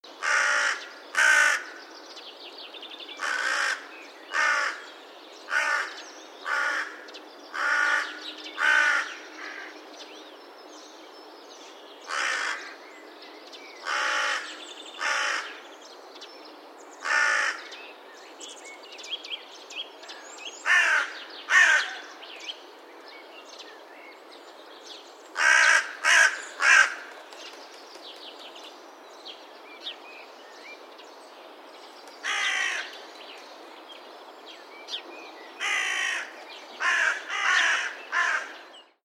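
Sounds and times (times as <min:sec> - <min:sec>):
carrion crow calling: 0:00.2 - 0:01.9, 0:03.2 - 0:09.8, 0:12.0 - 0:12.8, 0:13.8 - 0:15.6, 0:17.0 - 0:17.8, 0:20.1 - 0:22.2, 0:25.4 - 0:27.2, 0:32.2 - 0:33.0, 0:35.6 - 0:38.8.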